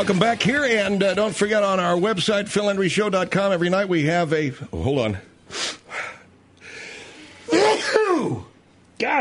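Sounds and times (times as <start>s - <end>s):
speech: 0.0s - 5.7s, 9.0s - 9.2s
person sneezing: 7.5s - 8.5s.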